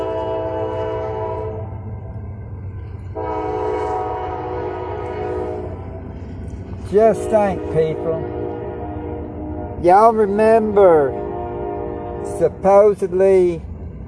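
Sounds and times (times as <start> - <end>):
train horn blaring at a truck stop: 0.0 - 2.2, 3.0 - 13.0
train rolling by at a truck stop: 0.0 - 14.0
speech: 6.9 - 8.4, 9.8 - 11.2, 12.3 - 13.7.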